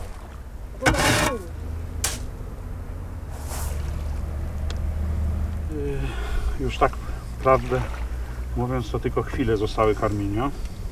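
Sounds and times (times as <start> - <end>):
water swishing: 0.0 - 2.3, 3.3 - 4.4, 7.0 - 8.8
small boat rocking on water with low rumble: 0.0 - 10.9
speech: 5.9 - 8.0, 8.6 - 10.7.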